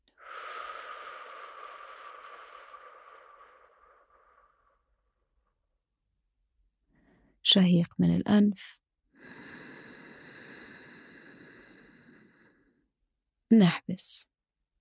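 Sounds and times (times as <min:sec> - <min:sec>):
long breathy exhale through the mouth during a breathing exercise: 0:00.0 - 0:04.9, 0:09.2 - 0:12.7
speech: 0:07.5 - 0:08.8, 0:13.5 - 0:14.3.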